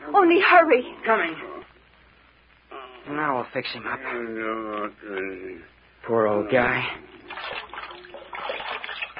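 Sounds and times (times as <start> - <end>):
speech: 0.2 - 1.5, 3.1 - 7.1
cold water splashing from a pan to bathe a head: 7.2 - 9.1.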